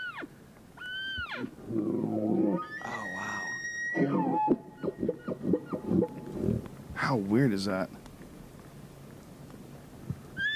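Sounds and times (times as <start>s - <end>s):
male and female elk calls: 0.0s - 6.6s
speech: 7.1s - 8.0s.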